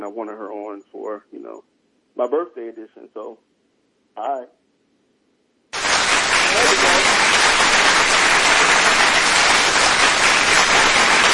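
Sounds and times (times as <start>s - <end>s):
speech: 0.0s - 3.5s, 4.2s - 4.6s
loud dense applause: 5.8s - 11.3s.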